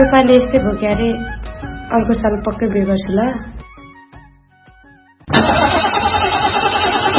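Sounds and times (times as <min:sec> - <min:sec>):
speech: 0:00.0 - 0:03.6
car engine with a weak battery cranking and running: 0:05.3 - 0:07.1.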